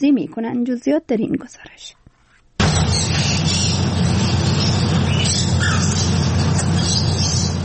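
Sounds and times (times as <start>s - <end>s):
speech: 0.0s - 2.0s
birds squawking and chirping inside a teahouse: 2.6s - 7.6s
low rumble: 2.6s - 7.6s.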